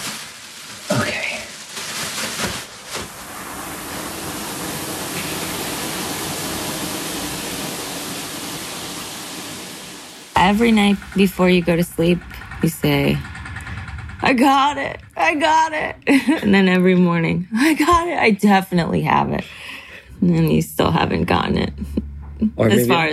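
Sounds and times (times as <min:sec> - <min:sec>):
running water like a shower spray: 0:00.7 - 0:18.1
speech: 0:10.4 - 0:13.3, 0:14.3 - 0:19.6, 0:20.2 - 0:23.1.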